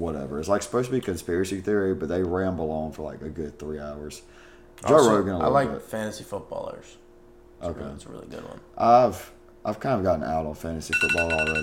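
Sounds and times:
speech: 0.0 - 7.0, 7.6 - 11.6
steady high electronic alarm tone: 10.9 - 11.6.

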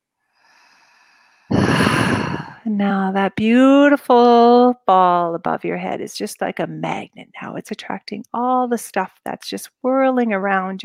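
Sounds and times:
deep breathy exhalation: 0.4 - 2.7
speech: 2.7 - 10.8.

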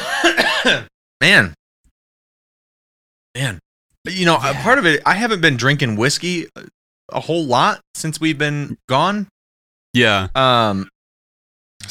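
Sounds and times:
person coughing: 0.0 - 0.9
speech: 0.6 - 1.6, 3.4 - 9.3, 10.0 - 10.9.

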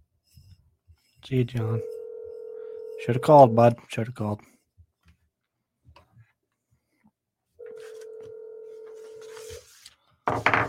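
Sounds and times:
speech: 1.3 - 1.9, 3.1 - 4.5
telephone ringback tone: 1.8 - 3.3, 7.6 - 9.4.

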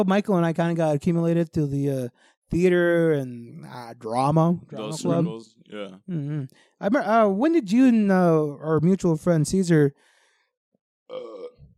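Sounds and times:
speech: 0.0 - 10.1, 11.1 - 11.5
loud drawn-out burp with gravelly low rumble: 11.1 - 11.7.

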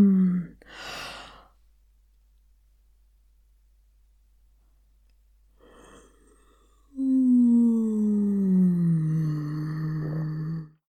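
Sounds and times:
breathy sigh: 0.0 - 1.6, 5.6 - 10.8.

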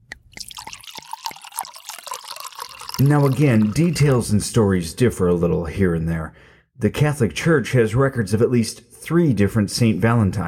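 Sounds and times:
boxed wine pouring into a glass: 0.1 - 4.4
speech: 3.0 - 10.4.

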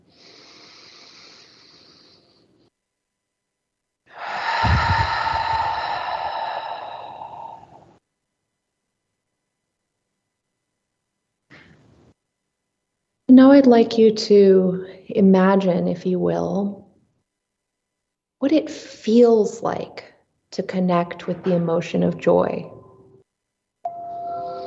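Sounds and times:
slow deep breathing in and out: 0.0 - 2.5, 4.1 - 8.0
speech: 13.4 - 16.8, 18.4 - 22.8.

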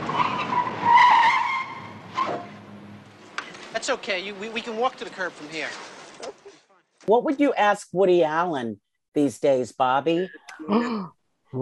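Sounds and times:
car tires squealing as a fast car skids to a stop to park: 0.0 - 2.6
speech: 3.9 - 5.9, 7.1 - 11.6.

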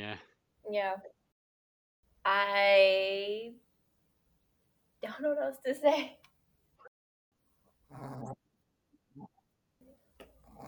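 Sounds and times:
speech: 0.0 - 1.2, 2.2 - 3.6, 5.0 - 6.2, 7.9 - 8.4
female dog snoring with pig-like grunts: 7.9 - 8.4, 10.3 - 10.6.

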